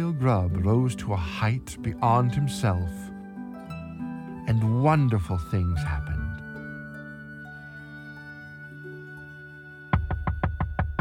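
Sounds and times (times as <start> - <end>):
speech: 0.0 - 3.1, 4.5 - 6.2
loud knocks on a door late at night: 10.0 - 10.9.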